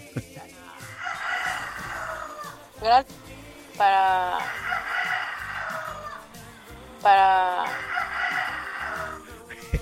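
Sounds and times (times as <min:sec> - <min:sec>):
speech: 0:00.2 - 0:00.8, 0:02.8 - 0:03.2, 0:03.8 - 0:04.7, 0:07.0 - 0:07.9
rooster crowing: 0:00.8 - 0:02.7, 0:03.8 - 0:06.3, 0:07.4 - 0:09.2.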